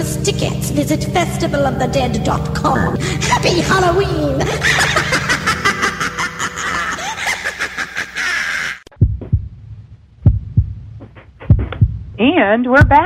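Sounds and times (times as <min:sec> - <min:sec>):
speech: 0:00.0 - 0:05.4, 0:12.4 - 0:13.0
loud dense musical passage: 0:00.0 - 0:07.4
laughter: 0:02.9 - 0:08.9
slow deep heartbeat thumps: 0:08.9 - 0:13.0.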